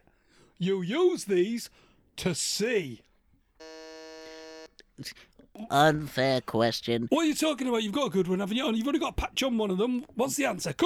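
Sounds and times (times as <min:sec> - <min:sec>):
speech: 0:00.6 - 0:03.1, 0:05.0 - 0:10.8
quiz-show buzzer pressed by a contestant: 0:03.6 - 0:04.7.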